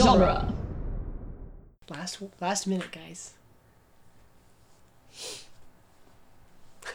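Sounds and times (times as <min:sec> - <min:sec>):
speech: 0:00.1 - 0:00.6, 0:02.0 - 0:03.4, 0:05.2 - 0:05.4
nasal sniffle: 0:05.1 - 0:05.6.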